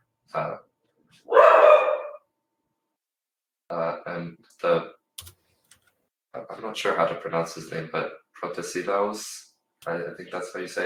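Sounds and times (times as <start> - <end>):
speech: 0.3 - 1.4, 3.7 - 4.9, 6.4 - 10.8
dog barking: 1.3 - 2.2.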